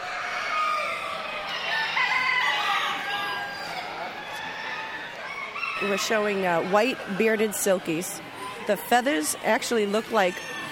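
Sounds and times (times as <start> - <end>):
roosters crowing at a poultry show: 0.0 - 8.2
speech: 5.8 - 10.6.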